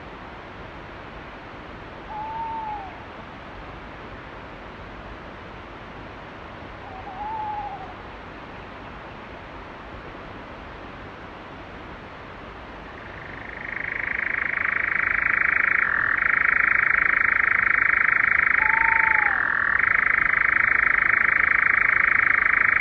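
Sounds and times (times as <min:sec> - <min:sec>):
nightjar: 0:02.1 - 0:03.0, 0:06.8 - 0:08.0, 0:12.9 - 0:22.7.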